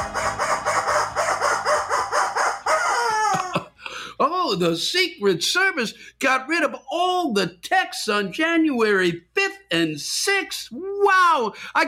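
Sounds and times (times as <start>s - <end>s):
rubber chicken squawking: 0.0s - 3.6s
speech: 4.5s - 11.8s.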